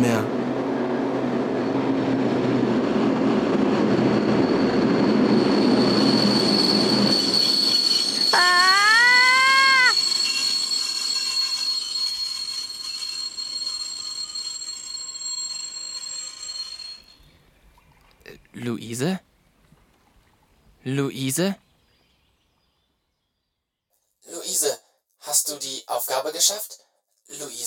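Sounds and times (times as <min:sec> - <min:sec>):
train rumbling past closed crossing barriers: 0:00.0 - 0:17.4
train wheels metallic squeal: 0:03.9 - 0:17.2
steady high-pitched tone: 0:04.3 - 0:13.7
speech: 0:21.4 - 0:21.6, 0:26.2 - 0:26.9.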